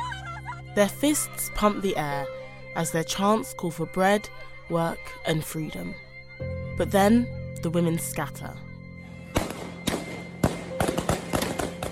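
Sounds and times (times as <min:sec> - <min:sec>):
speech: 0:00.8 - 0:08.7
gunshots fired into the air at a women's street protest: 0:09.3 - 0:11.8.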